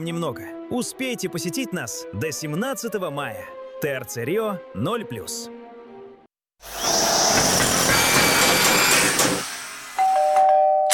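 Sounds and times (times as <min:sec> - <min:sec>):
speech: 0:00.0 - 0:05.6
loud continuous drilling noise from apartment renovation in a new-build: 0:06.6 - 0:10.2
two-tone doorbell chime: 0:10.0 - 0:10.9.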